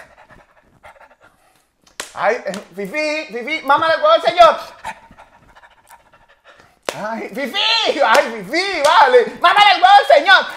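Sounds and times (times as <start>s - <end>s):
person imitating a dog panting with breathy huffs: 0.0s - 1.8s, 3.7s - 6.8s
speech: 2.2s - 4.8s, 7.0s - 10.5s.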